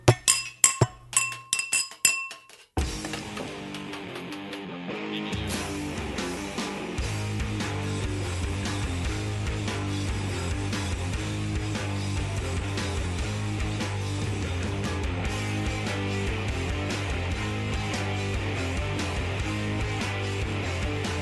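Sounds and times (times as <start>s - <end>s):
several glasses clinking together in a toast: 0.0s - 2.6s
music: 2.8s - 21.2s.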